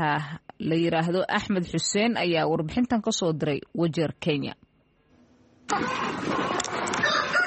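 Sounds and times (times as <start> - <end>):
speech: 0.0 - 4.6, 5.7 - 7.0
chickens clucking and squawking at a small poultry farm in Wajir, Kenya: 5.7 - 7.4.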